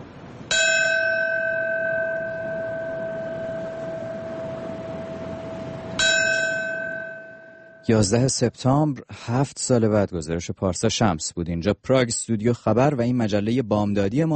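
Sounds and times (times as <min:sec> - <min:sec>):
memorial bell tolling at a ceremony in New York: 0:00.5 - 0:08.1
speech: 0:07.9 - 0:14.3.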